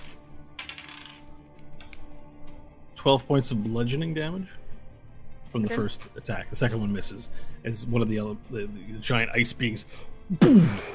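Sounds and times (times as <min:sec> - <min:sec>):
small eight-sided die rolling on a hard tabletop: 0:00.0 - 0:02.0
speech: 0:03.0 - 0:04.6, 0:05.5 - 0:10.9.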